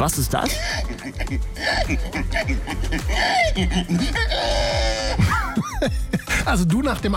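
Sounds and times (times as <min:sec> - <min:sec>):
speech: 0:00.0 - 0:07.1
laughter: 0:00.4 - 0:06.5
person doing a pig impression at a pig-imitation contest in Estonia: 0:00.6 - 0:05.2.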